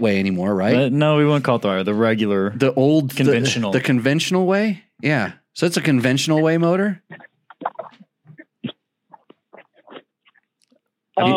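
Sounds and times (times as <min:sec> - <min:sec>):
speech: 0:00.0 - 0:07.3, 0:11.2 - 0:11.3
coyotes yipping while chasing a dog: 0:07.1 - 0:10.4.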